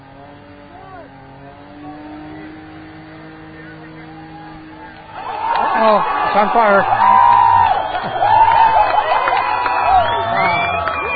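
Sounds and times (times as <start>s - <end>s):
loud crowd cheering and whooping: 3.6s - 11.1s
speech: 5.8s - 7.1s.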